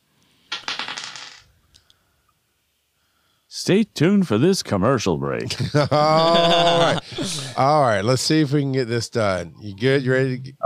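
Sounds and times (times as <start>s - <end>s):
dice rattling and clattering across a hard surface: 0.5s - 1.4s
speech: 3.5s - 10.6s
laughter: 5.5s - 7.6s.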